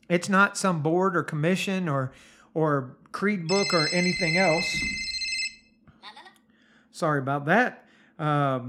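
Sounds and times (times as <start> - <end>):
speech: 0.1 - 5.1, 7.0 - 8.6
phone ringtone with bright electronic tones: 3.5 - 5.7.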